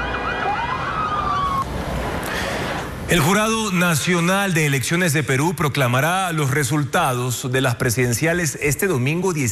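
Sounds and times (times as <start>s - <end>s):
police riot-control vehicle siren wailing: 0.0s - 1.7s
loud street noise at a protest march in Santiago Chile: 0.0s - 9.4s
speech: 3.1s - 9.4s.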